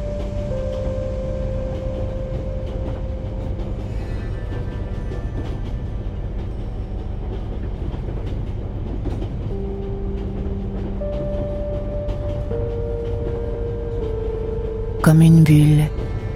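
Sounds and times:
faint rhythmic rattling: 0.0s - 16.3s
sustained tonal hums: 0.0s - 16.3s
train in motion rumbling: 0.0s - 16.3s
speech: 15.0s - 16.1s.

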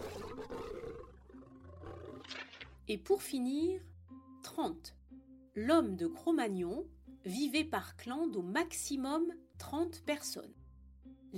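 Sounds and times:
lion roaring: 0.0s - 2.6s
speech: 2.9s - 3.9s, 4.6s - 5.0s, 5.6s - 10.6s.

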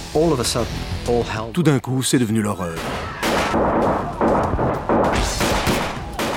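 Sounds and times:
speech: 0.1s - 4.5s
dense chaotic gunfire with many overlapping shots: 3.2s - 6.3s.

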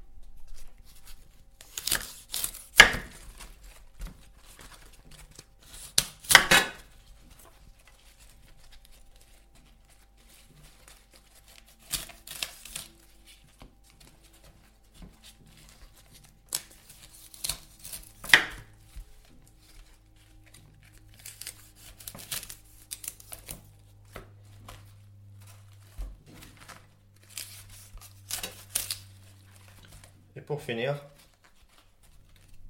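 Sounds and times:
low steady hum: 0.0s - 32.6s
outer leaves snapping and tearing off a whole cauliflower: 0.4s - 30.2s, 31.1s - 32.6s
speech: 30.5s - 31.1s.

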